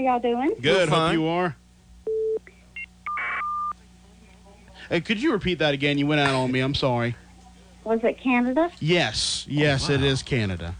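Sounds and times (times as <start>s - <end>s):
speech: 0.0s - 1.6s, 4.9s - 7.2s, 7.8s - 10.7s
telephone dialing tones placing a phone call: 2.1s - 3.7s.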